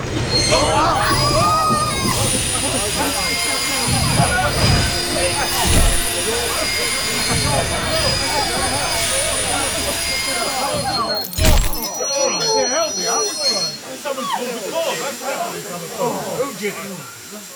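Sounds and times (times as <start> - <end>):
train rolling along the rails: 0.0 - 11.1
high-pitched train wheel squeal: 0.0 - 14.5
people talking indistinctly: 0.0 - 17.1.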